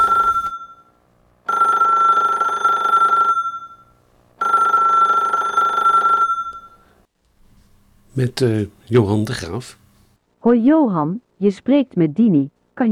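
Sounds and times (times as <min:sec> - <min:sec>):
telephone bell ringing: 0:00.0 - 0:00.9, 0:01.5 - 0:06.9
speech: 0:08.2 - 0:09.8, 0:10.4 - 0:12.9.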